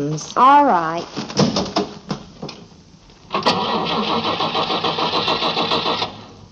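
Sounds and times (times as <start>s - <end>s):
speech: 0.0s - 1.8s
car starter cranking the engine, failing to catch: 3.3s - 6.4s.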